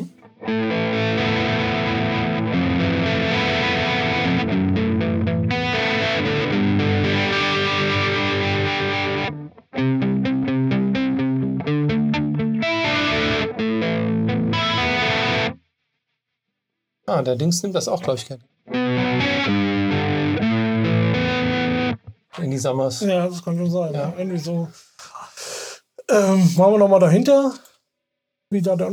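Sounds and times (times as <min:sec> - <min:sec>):
distorted electric guitar through an amp with chorus effect playing sustained chords: 0:00.0 - 0:15.6, 0:18.7 - 0:22.2
speech: 0:00.5 - 0:00.8, 0:17.2 - 0:18.5, 0:22.6 - 0:25.1, 0:26.1 - 0:27.7, 0:28.5 - 0:28.9.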